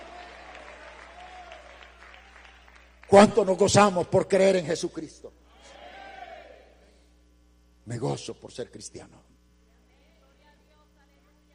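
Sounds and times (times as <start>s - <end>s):
church congregation applause giving praise: 0.0s - 3.8s
speech: 3.1s - 5.4s, 7.9s - 9.3s.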